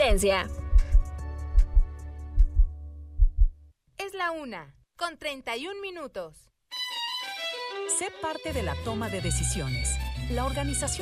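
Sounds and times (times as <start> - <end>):
heartbeat sound effect thumping: 0.0 - 3.6
speech: 0.1 - 0.6, 4.2 - 6.5, 7.8 - 11.0.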